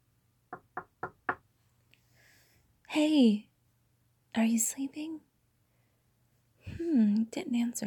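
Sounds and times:
firm knocking on a door: 0.5s - 1.5s
speech: 3.0s - 3.5s, 4.4s - 5.3s, 6.8s - 7.8s.

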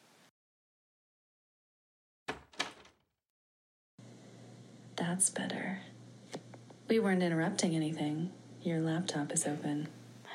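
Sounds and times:
bedroom door opening with latch clunks: 2.3s - 2.9s
low hum of room noise: 4.0s - 10.3s
speech: 5.0s - 5.9s, 6.9s - 10.0s.

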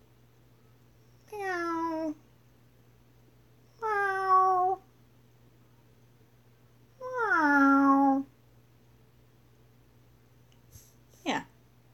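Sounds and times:
cat meowing and yowling: 1.3s - 2.2s, 3.8s - 4.8s, 7.0s - 8.3s.

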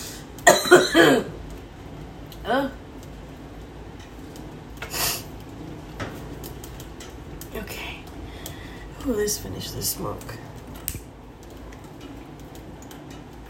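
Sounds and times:
person coughing: 0.4s - 1.4s
speech: 0.7s - 1.3s, 2.5s - 2.8s, 9.1s - 10.5s.

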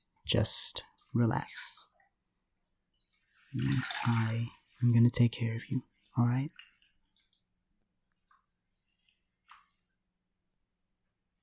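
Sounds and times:
speech: 0.3s - 1.9s, 3.5s - 6.6s
bath water splashing: 1.9s - 10.3s.

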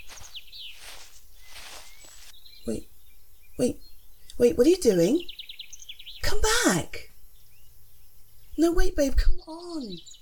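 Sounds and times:
leaves rustling: 0.0s - 2.5s
birds chirping and singing in woods: 0.0s - 10.1s
speech: 2.6s - 2.9s, 3.6s - 5.3s, 6.3s - 7.1s, 8.6s - 10.1s.

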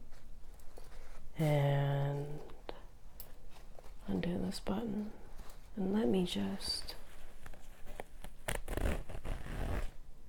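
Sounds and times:
speech: 1.4s - 2.0s, 4.5s - 7.0s
zipper on a pair of pants drawn down slowly: 7.9s - 10.0s.

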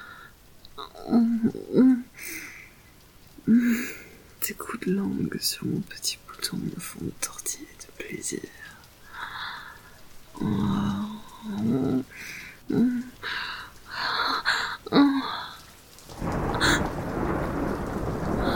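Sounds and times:
steady loud hiss of pouring rain: 0.0s - 18.5s
speech: 1.1s - 2.0s, 4.5s - 8.8s, 10.4s - 10.7s
rolling thunder rumbling and cracking during a rainstorm: 16.1s - 18.5s.

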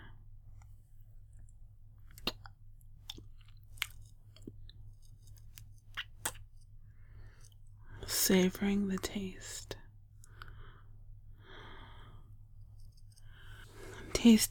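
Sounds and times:
quiet low hum: 0.0s - 14.4s
wet mouth clicks and smacks from fingers licked slowly: 1.3s - 6.7s
speech: 8.3s - 9.8s, 14.2s - 14.4s.

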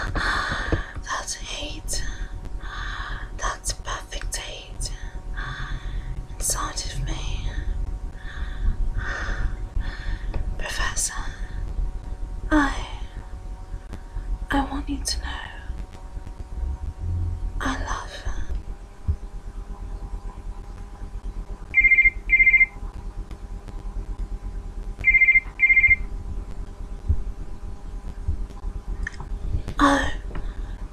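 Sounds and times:
low steady hum: 0.0s - 30.9s
phone ringing with electronic trill: 21.8s - 22.7s, 25.1s - 26.0s.

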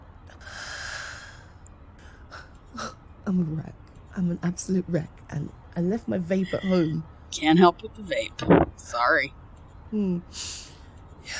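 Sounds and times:
shaken upset person breathing in and out deeply: 0.3s - 2.5s
speech: 2.8s - 10.6s.

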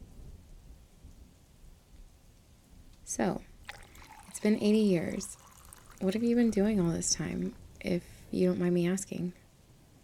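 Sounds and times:
speech: 3.1s - 3.5s, 4.4s - 5.4s, 6.0s - 9.4s
steady rain pouring outside: 3.6s - 7.8s.

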